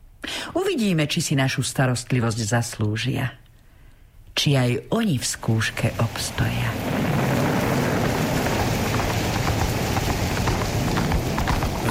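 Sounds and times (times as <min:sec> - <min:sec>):
speech: 0:00.6 - 0:03.4, 0:04.4 - 0:07.0
rain hissing in a heavy rainstorm: 0:05.2 - 0:11.8
wind in a heavy rainstorm: 0:05.4 - 0:11.8
horse hooves clopping on rocky ground in a heavy rainstorm: 0:05.8 - 0:11.8.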